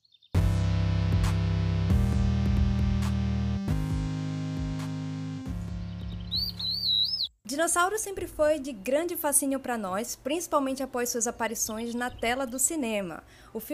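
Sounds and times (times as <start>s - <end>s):
podcast intro jingle of loud sustained synth chords: 0.4s - 6.6s
bird-like chirps and tweets: 5.7s - 7.4s
speech: 7.5s - 13.7s.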